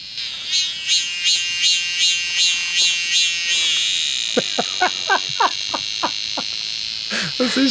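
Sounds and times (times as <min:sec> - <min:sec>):
Asian cicada species buzzing: 0:00.0 - 0:07.6
laughter: 0:04.3 - 0:06.6
speech: 0:07.4 - 0:07.6.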